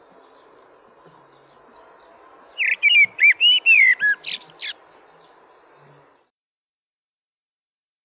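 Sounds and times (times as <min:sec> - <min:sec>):
common blackbird song with mellow whistled phrases: 0:00.0 - 0:06.3.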